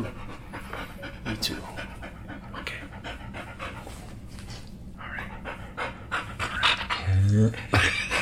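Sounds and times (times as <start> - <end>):
dog panting excitedly at a home in Los Angeles: 0.0 - 4.3, 5.1 - 8.2
speech: 7.3 - 8.0.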